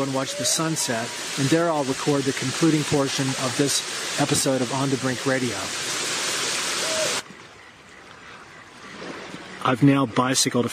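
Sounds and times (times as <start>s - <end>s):
speech: 0.0s - 6.0s, 9.6s - 10.7s
loud steady roar of rushing waterfall water: 0.0s - 7.2s
faint outdoor background: 0.0s - 10.7s.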